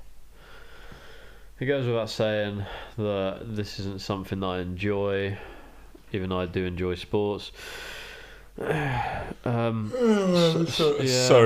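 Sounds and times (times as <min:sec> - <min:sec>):
speech: 0:01.6 - 0:05.5, 0:06.1 - 0:08.0, 0:08.6 - 0:11.4
person yawning: 0:08.6 - 0:11.1.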